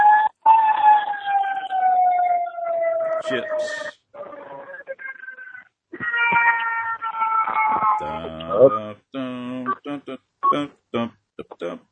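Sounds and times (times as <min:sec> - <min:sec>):
fire engine sirens wailing as fire engines drive by: 0:00.0 - 0:08.8
speech: 0:03.3 - 0:04.0.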